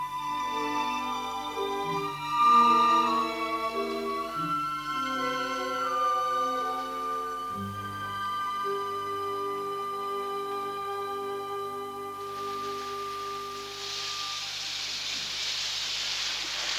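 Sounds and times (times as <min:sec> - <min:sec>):
held musical tones: 0:00.0 - 0:15.0
heavy rain: 0:12.2 - 0:16.7.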